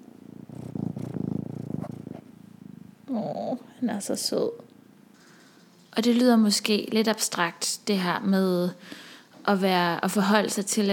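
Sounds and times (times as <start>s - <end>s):
domestic cat purring: 0.0s - 4.6s
speech: 3.1s - 4.6s, 6.0s - 10.9s.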